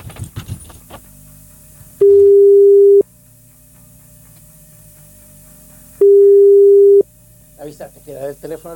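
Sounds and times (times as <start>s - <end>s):
telephone ringing tone on an outgoing call from a radio station phone: 2.0s - 3.0s, 6.0s - 7.0s
people talking: 7.6s - 8.7s.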